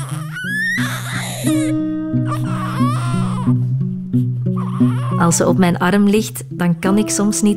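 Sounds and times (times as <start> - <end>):
small infant crying in high-pitched wails: 0.0 - 3.6, 4.5 - 5.4
speech: 1.4 - 1.9, 5.2 - 7.5.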